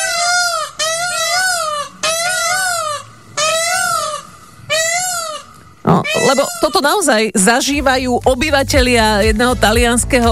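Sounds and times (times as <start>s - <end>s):
peacock calls: 0.0s - 7.0s
speech: 6.3s - 10.3s.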